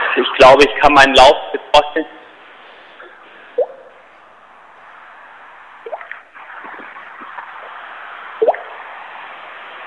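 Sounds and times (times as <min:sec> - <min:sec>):
speech: 0:00.2 - 0:02.2
hollow hiss in a cave: 0:00.7 - 0:09.8
water dripping in a cave: 0:05.8 - 0:06.8, 0:08.4 - 0:08.7.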